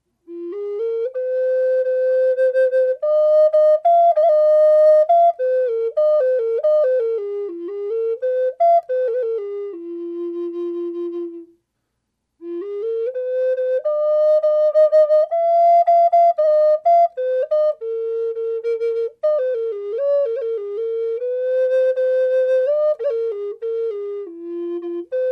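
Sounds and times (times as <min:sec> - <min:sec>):
dry owl flute: 0:00.2 - 0:11.6, 0:12.4 - 0:25.3.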